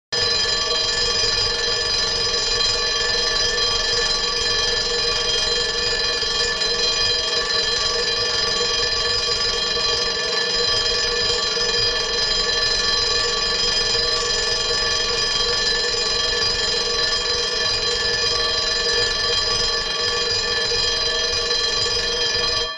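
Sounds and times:
bell burglar alarm ringing: 0.2 - 22.7.

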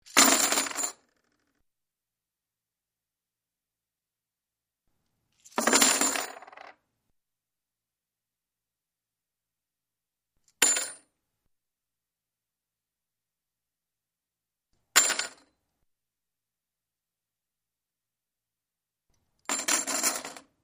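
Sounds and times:
many coins dropping: 0.1 - 1.0, 5.4 - 6.7, 19.5 - 20.5.

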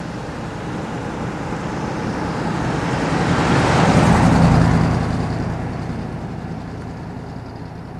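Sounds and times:
car passing slowly: 0.0 - 7.9.

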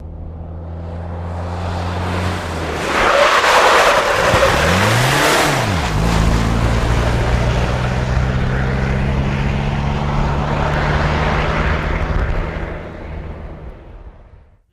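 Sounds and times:
1984 Jeep Cherokee skidding out: 1.4 - 13.0.

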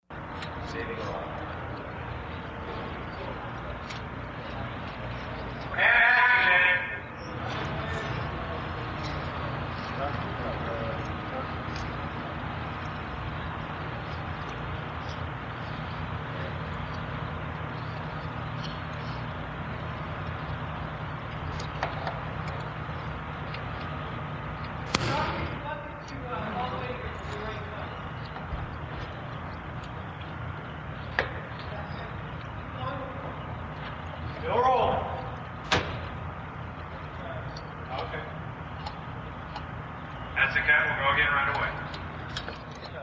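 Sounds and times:
movie set ambience during action: 0.1 - 43.0.

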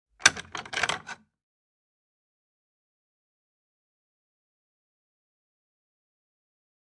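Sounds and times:
latch creaking: 0.2 - 1.2.

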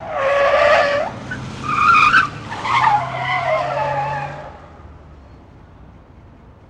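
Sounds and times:
car swerving and tyres squealing in a chase: 0.0 - 4.8.

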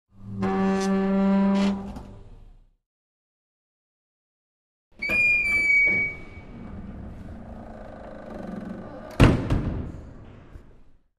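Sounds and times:
elevator door opening and closing: 0.2 - 2.4, 5.0 - 9.6.

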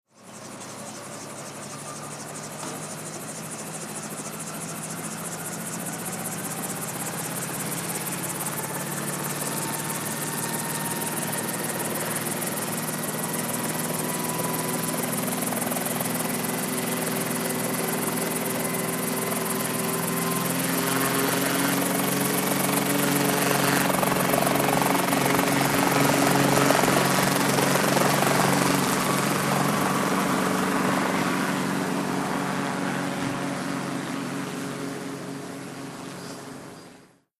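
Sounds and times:
helicopter approaching to land: 0.2 - 37.2.

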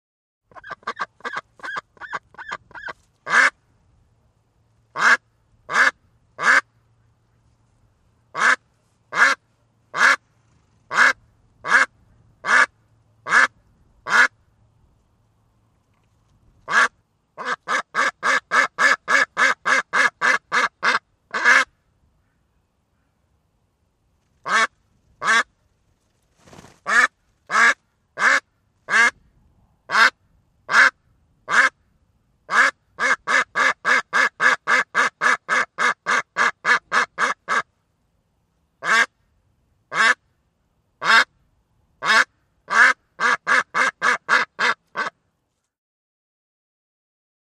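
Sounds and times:
duck quacking: 0.5 - 3.6, 4.9 - 6.7, 8.3 - 10.2, 10.9 - 14.4, 16.7 - 22.4, 24.4 - 25.5, 26.8 - 29.2, 29.9 - 31.8, 32.5 - 37.7, 38.8 - 39.2, 39.9 - 40.3, 41.0 - 41.4, 42.0 - 45.2.

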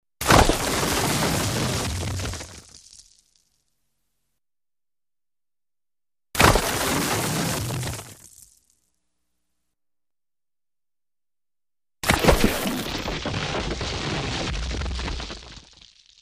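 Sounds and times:
rocks tumbling in a landslide: 0.2 - 3.4, 6.4 - 8.6, 12.0 - 16.2.

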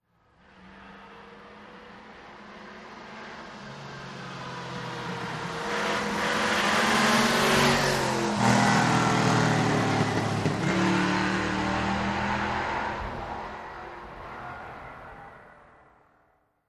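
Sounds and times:
car passing by fast: 0.7 - 15.8.

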